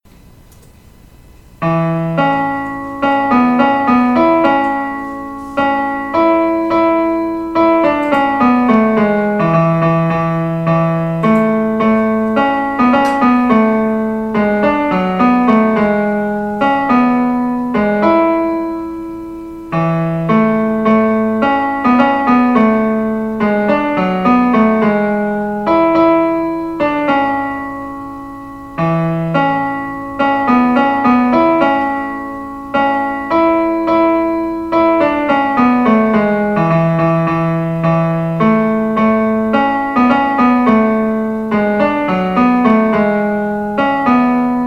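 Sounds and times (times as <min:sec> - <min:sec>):
tenor-range piano: 0:00.1 - 0:44.6.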